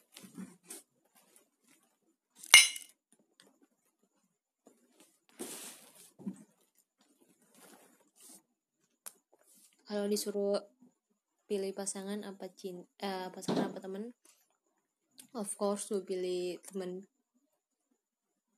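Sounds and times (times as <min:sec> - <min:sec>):
glasses clinking in a toast: 0:02.6 - 0:02.8
speech: 0:10.0 - 0:10.7, 0:11.5 - 0:14.4, 0:15.3 - 0:17.1.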